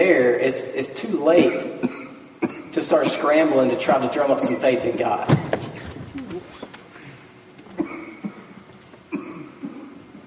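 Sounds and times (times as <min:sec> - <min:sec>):
speech: 0:00.0 - 0:02.0, 0:02.7 - 0:05.6
low hum: 0:00.0 - 0:10.2
person coughing: 0:01.4 - 0:02.8, 0:07.7 - 0:10.0.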